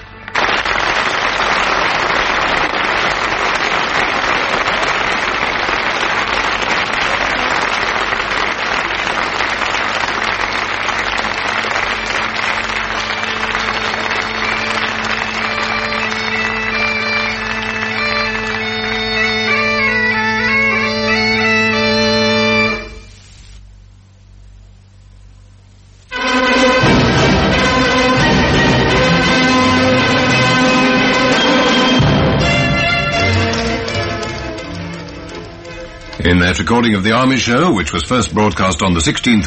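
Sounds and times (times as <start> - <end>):
large audience clapping: 0.0 - 22.8, 26.2 - 39.4
sustained musical tones: 7.1 - 23.2, 26.1 - 39.4
speech: 36.5 - 39.4.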